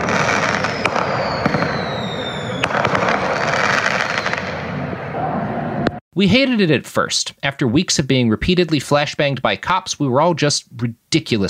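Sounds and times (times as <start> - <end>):
firework mortars exploding in a crowd in front of the Justice Center: 0.0 - 4.8
dense roaring crowd noise in front of the Justice Center: 0.0 - 6.3
speech: 6.2 - 11.4.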